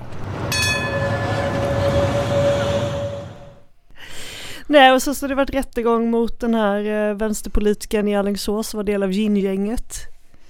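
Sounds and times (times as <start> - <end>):
tram rolling along rails with low rumble and metallic whine: 0.0 - 3.7
speech: 4.7 - 10.1.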